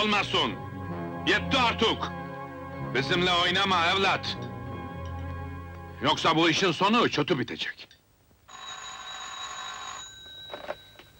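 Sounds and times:
speech: 0.0s - 2.2s, 2.8s - 4.5s, 6.0s - 7.9s
telephone ringing with an electronic trill: 8.5s - 11.1s.

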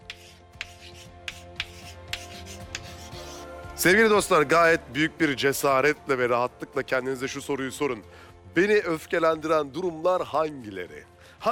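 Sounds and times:
pen writing on a board: 0.0s - 3.5s
speech: 3.8s - 11.4s.

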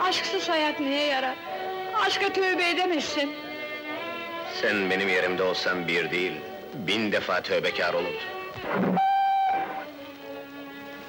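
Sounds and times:
speech: 0.1s - 3.5s, 4.5s - 9.1s
departing steam train whistle blasts: 9.0s - 9.9s.

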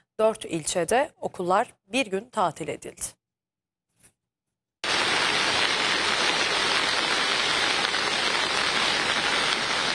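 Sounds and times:
speech: 0.2s - 3.2s
heavy downpour of rain hammering down: 4.8s - 9.9s.

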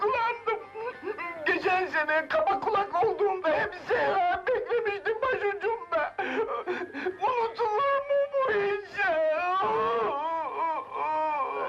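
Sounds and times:
person crying in wailing sobs: 0.0s - 1.6s, 3.0s - 11.6s
speech: 1.7s - 4.4s.

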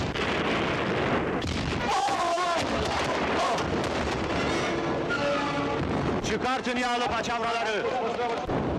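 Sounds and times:
ship cannons firing in a continuous barrage: 0.0s - 5.1s, 5.8s - 6.6s
speech: 6.3s - 8.6s.

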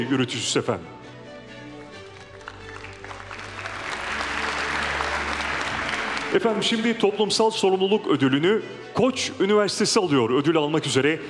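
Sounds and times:
speech: 0.0s - 1.1s, 6.3s - 11.2s
audience applauding at a university award ceremony: 1.8s - 7.0s.

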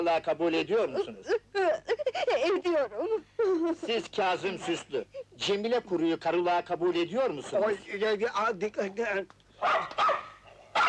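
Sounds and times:
speech: 0.0s - 10.0s
dog barking during a wedding ceremony: 9.6s - 10.8s.

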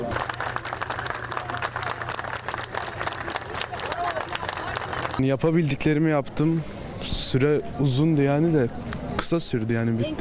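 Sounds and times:
crowd voices: 0.0s - 10.1s
applause greeting students finishing a university entrance exam: 0.1s - 5.2s
speech: 5.2s - 10.1s.

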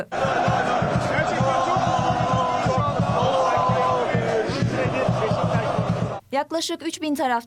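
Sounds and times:
speech: 0.0s - 1.0s, 6.4s - 7.4s
football fans chanting and cheering at an airport: 0.0s - 6.2s
rhythmic shouting: 0.0s - 6.2s
scattered claps: 0.2s - 6.2s.

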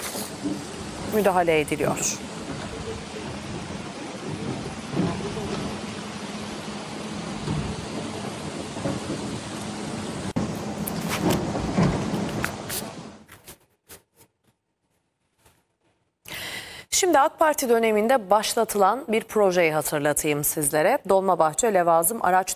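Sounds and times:
heavy rain pouring with a low rumble: 0.0s - 13.3s
speech: 0.4s - 2.4s, 17.2s - 22.5s.

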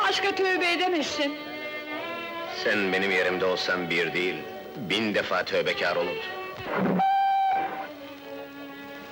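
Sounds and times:
speech: 0.1s - 1.5s, 2.6s - 7.1s
train whistle blasts as the train departs: 7.0s - 7.9s.

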